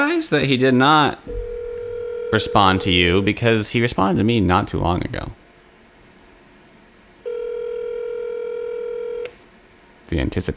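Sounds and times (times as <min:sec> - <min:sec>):
speech: 0:00.2 - 0:01.4, 0:02.3 - 0:05.4, 0:10.1 - 0:10.5
electronic ringback tone from an outgoing phone call: 0:01.3 - 0:03.3, 0:07.3 - 0:09.3.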